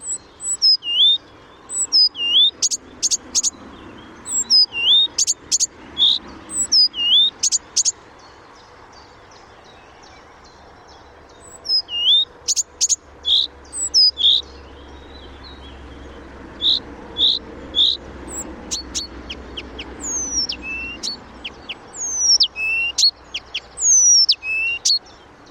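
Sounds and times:
Blyth's reed warbler song: 0:00.0 - 0:25.4.

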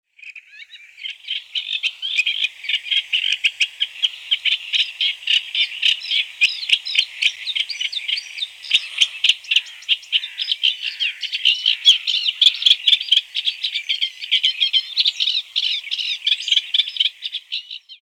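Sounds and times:
Eurasian reed warbler singing: 0:00.1 - 0:18.0.

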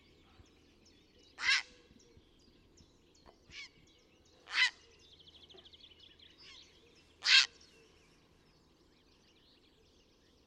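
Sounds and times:
grey heron calling: 0:01.4 - 0:01.7, 0:04.5 - 0:04.8, 0:07.2 - 0:07.6.

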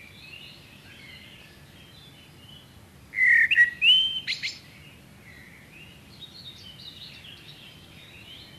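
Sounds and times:
common blackbird short clear whistled phrase: 0:03.2 - 0:04.6.

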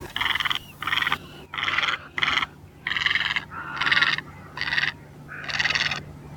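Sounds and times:
great egret calling: 0:00.0 - 0:06.2.

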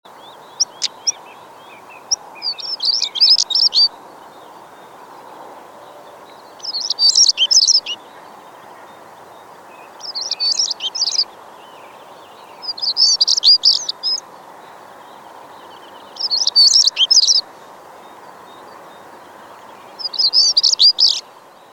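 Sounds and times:
European stonechat singing: 0:00.1 - 0:21.2.

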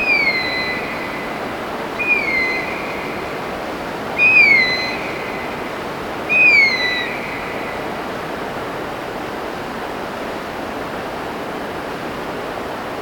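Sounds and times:
Philippine eagle giving thin high downward-sliding whistled notes: 0:00.0 - 0:07.9.

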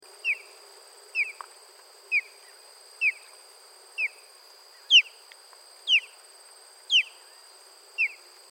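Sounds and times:
osprey song: 0:00.2 - 0:00.5, 0:01.2 - 0:01.4, 0:03.0 - 0:03.3, 0:04.8 - 0:05.2, 0:05.8 - 0:06.2, 0:06.9 - 0:07.3, 0:08.0 - 0:08.2.

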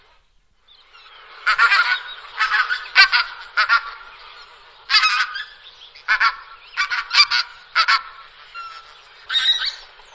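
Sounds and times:
Pink-footed goose honking calls: 0:01.4 - 0:04.1, 0:04.9 - 0:09.4.

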